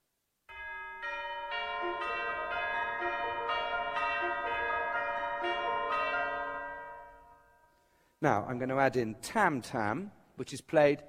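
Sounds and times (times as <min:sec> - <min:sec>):
orchestral chimes: 0:00.5 - 0:08.2
piano striking the same notes as the chimes: 0:00.6 - 0:07.6
speech: 0:08.2 - 0:11.0.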